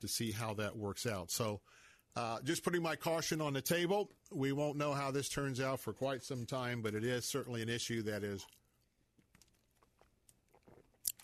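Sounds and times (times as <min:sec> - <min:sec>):
speech: 0:00.0 - 0:08.6
person sipping water with small wet clicks: 0:08.5 - 0:11.2.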